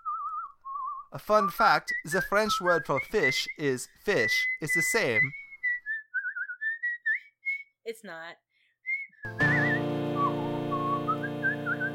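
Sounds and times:
person whistling a wandering sliding tune: 0:00.0 - 0:07.8, 0:08.8 - 0:11.9
speech: 0:01.1 - 0:05.4, 0:07.9 - 0:08.4.

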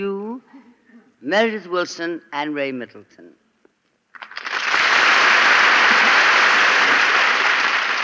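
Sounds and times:
speech: 0:01.2 - 0:03.4
audience applause after a reading: 0:04.2 - 0:08.0.

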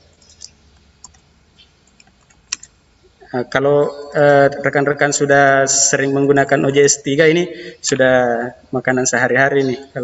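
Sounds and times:
quiet hiss: 0:00.0 - 0:10.0
computer keyboard keys pressed for copy, paste and tab: 0:00.1 - 0:01.2, 0:01.8 - 0:02.7
speech: 0:03.3 - 0:10.0.

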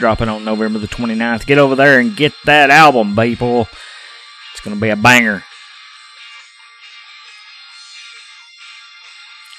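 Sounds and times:
speech: 0:00.0 - 0:03.9, 0:04.6 - 0:05.5
tinny hard rock music from a small speaker: 0:00.0 - 0:09.5.

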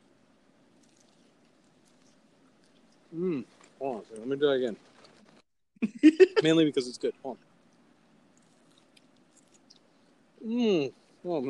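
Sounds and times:
person chewing a crispy fry: 0:00.7 - 0:04.2, 0:08.3 - 0:09.9
speech: 0:03.1 - 0:04.9, 0:05.8 - 0:07.5, 0:10.5 - 0:11.4.

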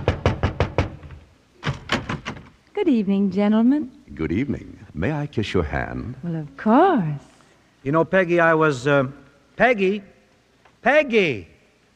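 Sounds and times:
firm knocks on a door: 0:00.0 - 0:02.5
speech: 0:02.8 - 0:10.2, 0:10.8 - 0:11.5.

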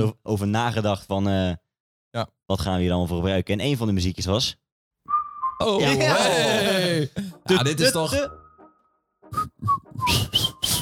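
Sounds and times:
speech: 0:00.0 - 0:04.6, 0:05.6 - 0:08.4
person whistling a tune badly: 0:05.1 - 0:05.9, 0:08.2 - 0:10.8.

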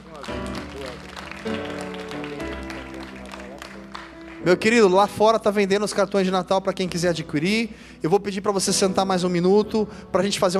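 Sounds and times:
crowd applauding in a large room: 0:00.0 - 0:07.1
speech: 0:04.4 - 0:10.5.

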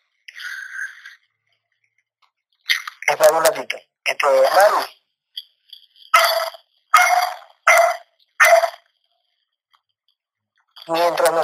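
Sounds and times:
speech: 0:03.2 - 0:05.0, 0:10.9 - 0:11.4
dogs barking: 0:06.2 - 0:08.9.

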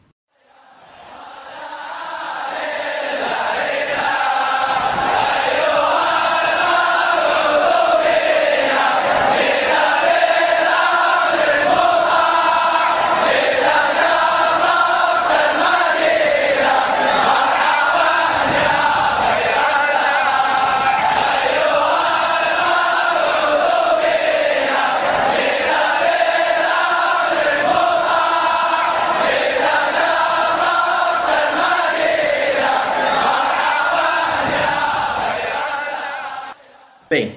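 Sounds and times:
football supporters chanting in unison in a large stadium: 0:00.0 - 0:37.3.

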